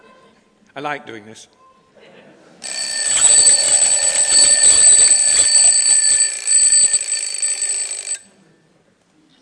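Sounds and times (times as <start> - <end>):
speech: 0.8 - 1.6
electronic alarm clock ringing with harsh high-pitched buzzing: 2.6 - 8.2.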